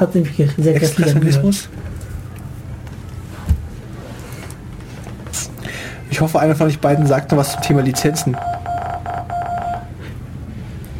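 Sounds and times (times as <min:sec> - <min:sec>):
speech: 0:00.0 - 0:02.0, 0:06.2 - 0:08.6
steady low hum: 0:01.6 - 0:10.9
electronic Morse code beeps in a jingle: 0:06.8 - 0:09.9.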